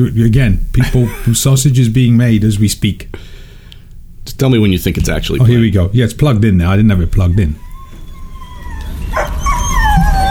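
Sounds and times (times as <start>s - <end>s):
speech: 0.0s - 3.4s, 4.2s - 7.6s
steady low rumble: 0.0s - 8.7s
racing dogs in starting traps whining, yelping and howling before a race: 7.6s - 10.2s.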